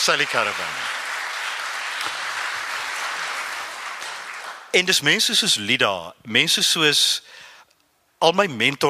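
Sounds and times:
speech: 0:00.0 - 0:01.0, 0:04.7 - 0:07.4, 0:08.2 - 0:08.8
audience applause for an actress's performance: 0:00.0 - 0:04.8.

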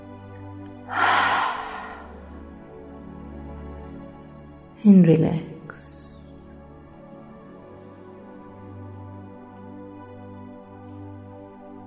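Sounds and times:
long deep exhale with a breathy ha sound during a relaxation breathing exercise: 0:00.9 - 0:02.3
speech: 0:04.8 - 0:05.9.

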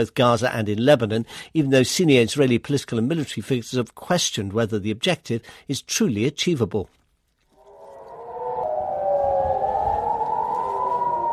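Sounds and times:
speech: 0:00.0 - 0:07.0
air raid sirens wailing across a city: 0:07.6 - 0:11.3.

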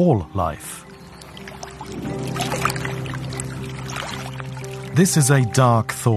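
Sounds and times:
speech: 0:00.0 - 0:01.0, 0:01.9 - 0:02.7, 0:05.0 - 0:06.1
lagoon water sloshing and lapping against a small boat: 0:00.8 - 0:05.0.

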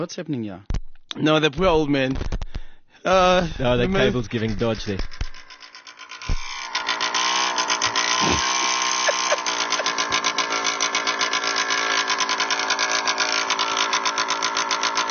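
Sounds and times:
speech: 0:00.0 - 0:02.4, 0:03.0 - 0:05.2
engine idling with rattling pulse and faint whine: 0:02.3 - 0:15.1
brief thump: 0:06.3 - 0:06.5
laughter: 0:07.9 - 0:10.4.

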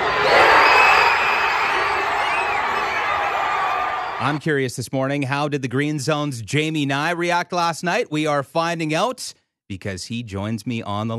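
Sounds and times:
large outdoor hockey crowd roaring and cheering outside arena after goal: 0:00.0 - 0:04.4
whoops and shouts from the crowd: 0:00.0 - 0:04.4
speech: 0:04.2 - 0:11.1.

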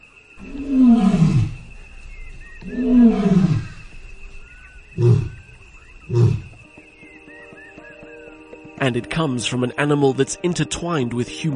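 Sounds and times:
lion roaring: 0:00.4 - 0:06.6
speech: 0:08.8 - 0:11.5.

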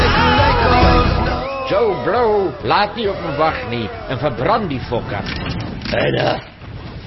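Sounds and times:
monster screaming: 0:00.2 - 0:05.5
speech: 0:02.5 - 0:06.5.

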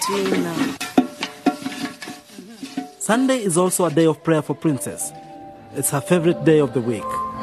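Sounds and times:
plates and pots clinking together: 0:00.0 - 0:04.3
speech: 0:00.1 - 0:00.8, 0:03.1 - 0:07.2.

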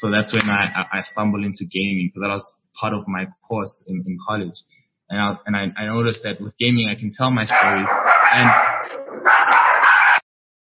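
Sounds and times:
speech: 0:00.0 - 0:09.6
dog barking: 0:07.5 - 0:10.2.

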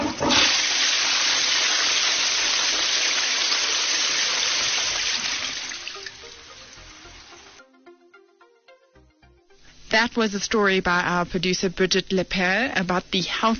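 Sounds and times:
toilet flushing: 0:00.0 - 0:07.6
toilet water trickling as the tank refills: 0:00.0 - 0:07.6
speech: 0:10.1 - 0:13.5.

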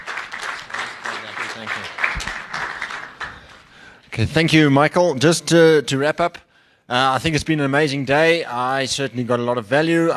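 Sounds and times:
room full of people applauding: 0:00.0 - 0:03.9
speech: 0:01.6 - 0:02.0, 0:04.2 - 0:10.1.

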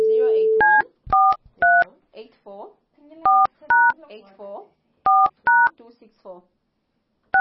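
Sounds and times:
brief steady telephone tone: 0:00.0 - 0:00.7
two-tone telephone keypad beeps as a phone number is dialed: 0:00.0 - 0:01.9, 0:03.3 - 0:04.0, 0:05.1 - 0:05.7.

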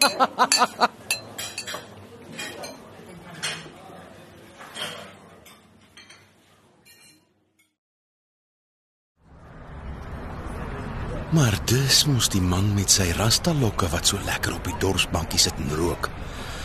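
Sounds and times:
speech: 0:00.0 - 0:00.9, 0:11.3 - 0:16.5
laughter: 0:00.0 - 0:01.0
coffee cups clinking together in a toast: 0:00.0 - 0:02.8.

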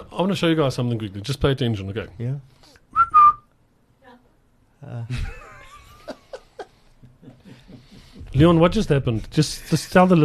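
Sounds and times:
speech: 0:00.2 - 0:02.9, 0:04.8 - 0:05.4, 0:08.4 - 0:10.2
person whistling: 0:02.9 - 0:03.5
laughter: 0:05.1 - 0:08.4.

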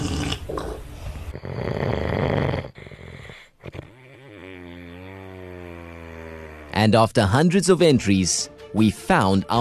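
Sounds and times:
loud rasping human snore: 0:00.0 - 0:06.9
speech: 0:06.8 - 0:09.5.

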